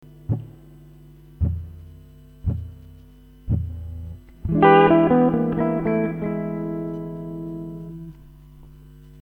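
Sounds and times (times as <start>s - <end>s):
blues guitar licks: 0.3s - 0.7s, 1.4s - 2.8s, 3.5s - 8.3s.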